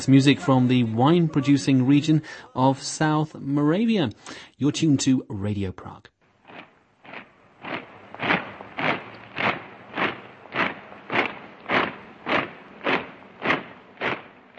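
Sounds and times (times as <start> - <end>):
laughter: 0.0 - 3.2
speech: 0.0 - 6.1
German troops marching footsteps crossing Wenceslas Square in Prague: 6.5 - 14.5.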